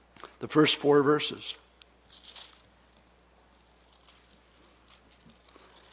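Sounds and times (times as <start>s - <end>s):
speech: 0.4s - 1.7s
thin Bible pages being turned: 2.1s - 5.9s.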